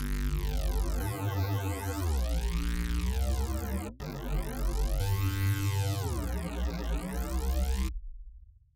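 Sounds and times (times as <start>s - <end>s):
processed stereo synth: 0.0s - 7.9s.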